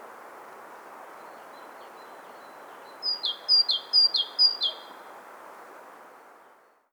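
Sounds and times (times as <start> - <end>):
great tit Parus major singing a bright two-part motif: 3.0 - 4.9.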